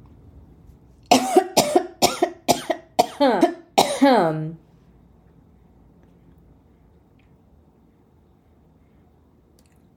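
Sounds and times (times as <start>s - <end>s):
harsh loud coughs in a sudden coughing attack: 1.1s - 4.3s.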